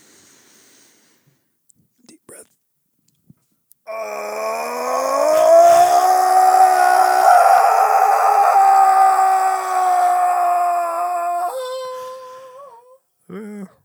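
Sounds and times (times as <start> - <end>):
person screaming into a microphone: 3.9 - 12.9.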